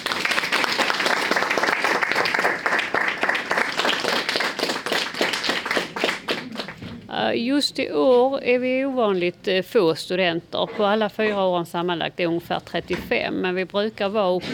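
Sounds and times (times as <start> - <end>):
audience applause after a student presentation: 0.0 - 6.9
speech: 7.3 - 14.5.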